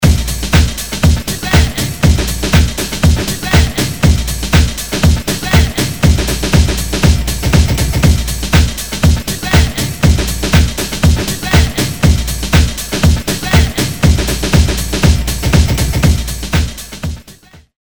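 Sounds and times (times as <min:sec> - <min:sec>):
groove: 0:00.0 - 0:17.6.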